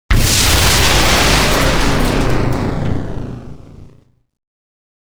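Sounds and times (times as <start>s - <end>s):
large explosion: 0.1s - 4.0s.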